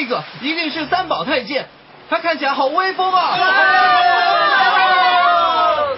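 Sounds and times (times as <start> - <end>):
speech: 0.0 - 4.7
large crowd cheering and shouting as a fleet of ships comes into harbour: 3.3 - 5.9.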